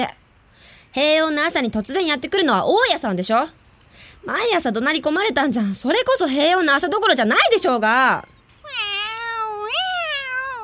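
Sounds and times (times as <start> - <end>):
speech: 0.0 - 0.2, 0.9 - 8.8
cat meowing: 8.6 - 10.6.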